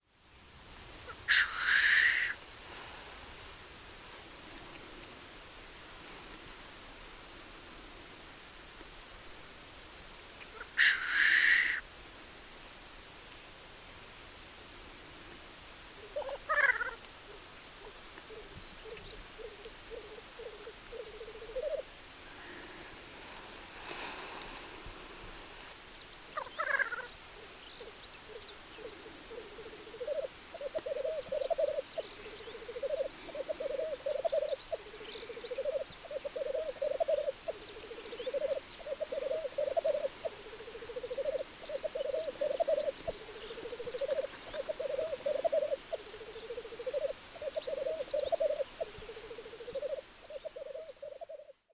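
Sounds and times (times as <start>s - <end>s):
black grouse calling: 1.0s - 2.4s, 10.4s - 11.8s, 16.0s - 23.0s, 25.5s - 51.7s.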